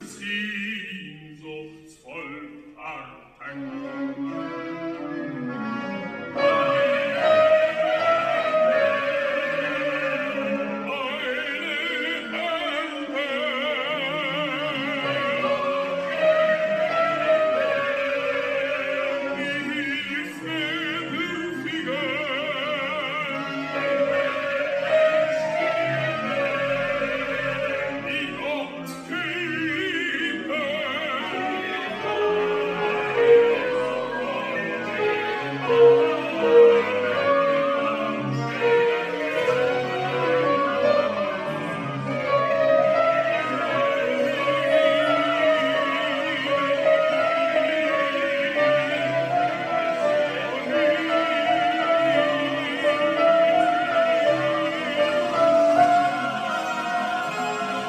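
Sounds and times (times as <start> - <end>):
sopranos singing: 0.0 - 57.8.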